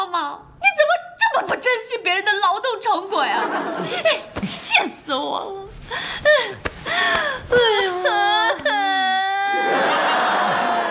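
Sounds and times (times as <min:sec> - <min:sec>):
speech: 0:01.5 - 0:08.2
laughter: 0:03.3 - 0:04.3, 0:09.5 - 0:10.8
woman crying and sobbing: 0:03.7 - 0:04.4, 0:05.9 - 0:09.8
sharp gasping breaths: 0:05.8 - 0:07.5.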